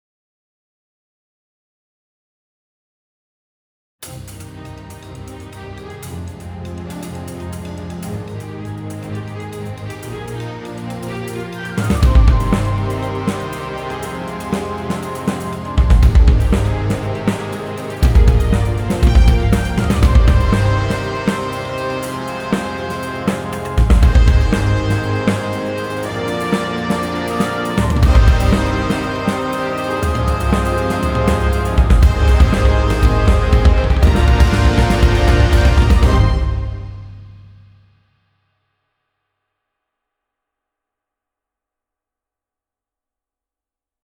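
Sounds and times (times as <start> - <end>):
powerful drums: 4.0 - 38.0.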